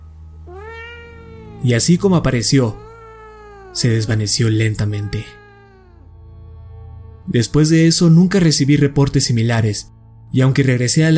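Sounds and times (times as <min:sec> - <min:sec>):
strange drawn-out cat meow: 0:00.4 - 0:06.1
speech: 0:01.6 - 0:02.9, 0:03.7 - 0:05.4, 0:07.3 - 0:11.1.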